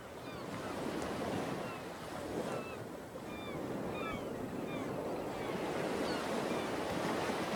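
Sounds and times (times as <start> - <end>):
ocean waves breaking on a beach: 0.0 - 7.5
faint high-pitched bird calls: 2.6 - 6.7.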